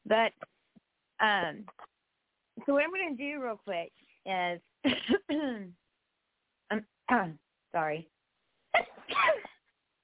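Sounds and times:
speech: 0:00.1 - 0:00.5, 0:01.2 - 0:01.8, 0:02.7 - 0:05.8, 0:06.7 - 0:08.1
small quick sneeze: 0:08.7 - 0:09.6.

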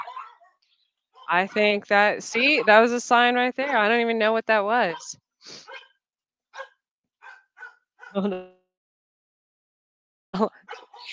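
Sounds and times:
dog barking in sharp yaps: 0:00.0 - 0:01.7, 0:05.7 - 0:06.0, 0:06.6 - 0:08.2, 0:10.6 - 0:11.1
speech: 0:01.3 - 0:05.8, 0:08.1 - 0:08.6, 0:10.3 - 0:11.1.

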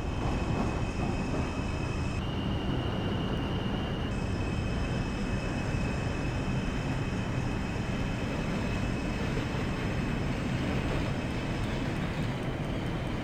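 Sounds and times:
train rolling under power with low rumble: 0:00.0 - 0:13.2.

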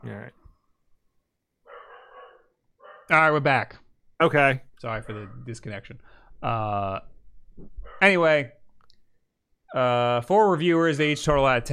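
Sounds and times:
dog barking: 0:01.6 - 0:03.2, 0:05.0 - 0:05.4, 0:07.8 - 0:08.1
speech: 0:03.1 - 0:08.6, 0:09.7 - 0:11.7.

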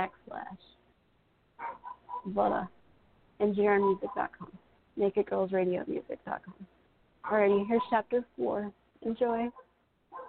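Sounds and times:
speech: 0:00.0 - 0:00.6, 0:02.2 - 0:02.8, 0:03.4 - 0:09.6
dog barking: 0:01.6 - 0:02.3, 0:09.6 - 0:10.2.

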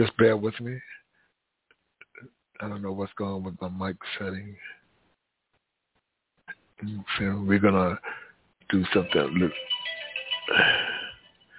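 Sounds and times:
speech: 0:00.0 - 0:01.0, 0:02.2 - 0:04.8, 0:06.8 - 0:09.7, 0:10.5 - 0:11.0
phone ringtone with a warbling electronic tone: 0:09.0 - 0:11.5.

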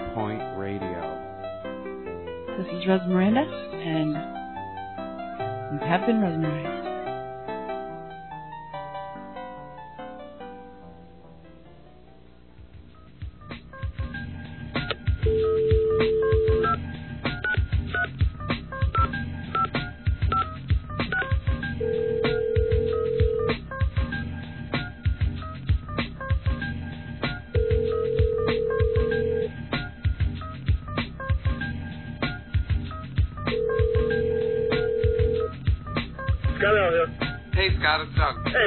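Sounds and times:
dense busy background with a rhythmic pulse: 0:00.0 - 0:08.1, 0:12.6 - 0:38.6
speech: 0:02.6 - 0:04.4, 0:05.7 - 0:06.8
long steady telephone tones: 0:15.2 - 0:16.8, 0:21.2 - 0:23.6, 0:27.6 - 0:29.6, 0:33.5 - 0:35.5.

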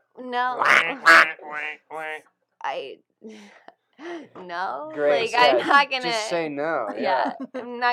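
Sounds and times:
speech: 0:00.3 - 0:07.9
duck quacking: 0:00.6 - 0:02.2.

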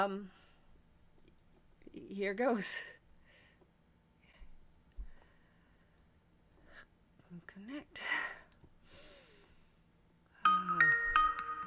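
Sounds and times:
speech: 0:00.0 - 0:00.4, 0:02.0 - 0:03.0, 0:07.3 - 0:08.4
Skype call ringing tone chime: 0:10.5 - 0:11.6.

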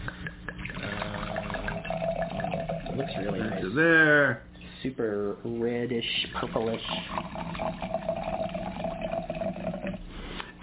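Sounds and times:
red Cabernet wine pouring into a glass: 0:00.6 - 0:03.7, 0:06.4 - 0:10.0
speech: 0:03.0 - 0:08.4.

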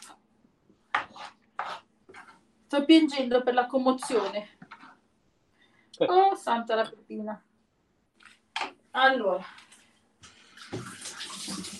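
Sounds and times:
speech: 0:02.7 - 0:04.6, 0:06.0 - 0:07.5, 0:09.0 - 0:09.6
cold water running from a tap: 0:10.5 - 0:11.7.

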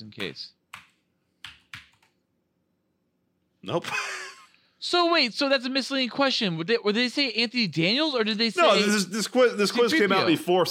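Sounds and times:
speech: 0:00.2 - 0:00.6, 0:03.6 - 0:04.2, 0:04.8 - 0:10.6
computer keyboard key clicks: 0:00.2 - 0:02.2.

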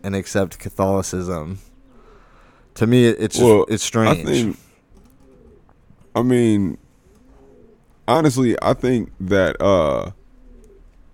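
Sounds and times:
speech: 0:00.0 - 0:01.7, 0:02.8 - 0:04.6, 0:06.1 - 0:06.8, 0:08.1 - 0:10.2
pigeon cooing: 0:03.4 - 0:05.8, 0:07.0 - 0:07.9, 0:09.8 - 0:11.0.

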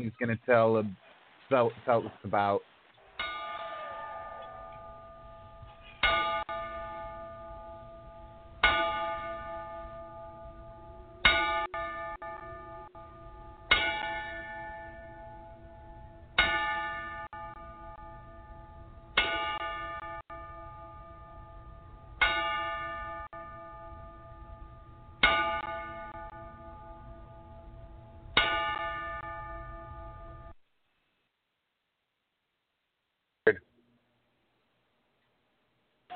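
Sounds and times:
speech: 0:00.0 - 0:02.7
bell tolling in a ten-bell salute: 0:03.2 - 0:30.5.

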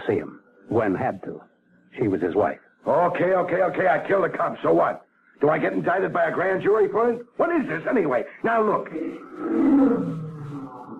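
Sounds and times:
speech: 0:00.1 - 0:10.2
lion roaring: 0:09.2 - 0:10.9.

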